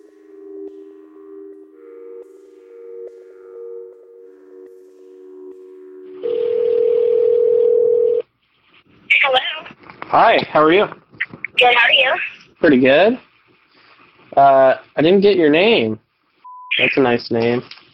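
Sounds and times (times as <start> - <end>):
telephone ringing tone over hiss: 6.2 - 8.3
speech: 10.1 - 11.0, 11.6 - 13.3, 14.4 - 16.0, 16.8 - 17.8.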